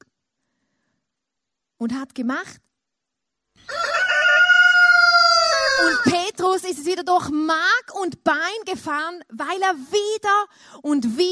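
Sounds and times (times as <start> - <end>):
speech: 1.8 - 2.7, 5.8 - 11.2
rooster crowing: 3.6 - 6.1.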